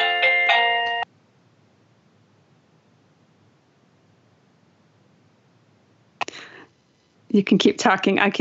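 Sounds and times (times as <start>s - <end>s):
ornate multi-note doorbell chime: 0.0s - 1.1s
speech: 7.4s - 8.4s.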